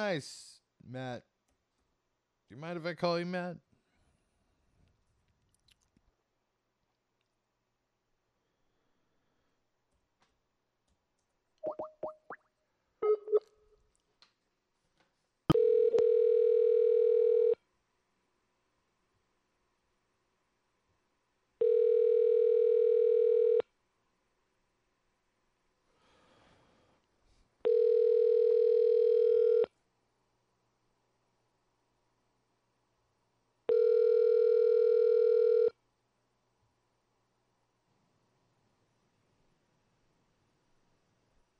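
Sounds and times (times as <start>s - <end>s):
speech: 0.0s - 1.3s, 2.5s - 3.7s
phone line ringback tones: 15.5s - 17.6s, 21.6s - 23.6s, 27.7s - 29.7s, 33.7s - 35.7s.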